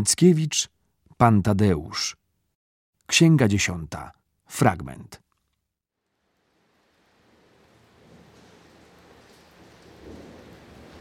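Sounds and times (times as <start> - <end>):
speech: 0.0 - 2.2, 3.1 - 5.2
heavy rain: 6.0 - 10.9
low rumbling thunder: 7.1 - 10.9.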